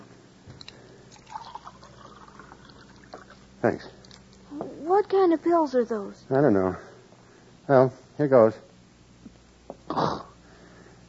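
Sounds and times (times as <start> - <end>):
steady hum: 0.0 - 11.0
water poured into a glass: 1.1 - 3.4
speech: 3.6 - 4.0, 5.0 - 6.9, 7.7 - 8.7.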